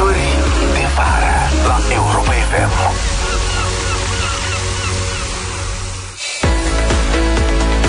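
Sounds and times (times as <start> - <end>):
upbeat music: 0.0 - 7.8
sea waves breaking on shore: 0.3 - 6.5.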